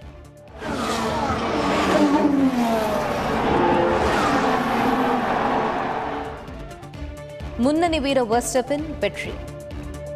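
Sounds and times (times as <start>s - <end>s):
Formula One race car engines speeding past: 0.5s - 6.6s
speech: 7.6s - 9.5s.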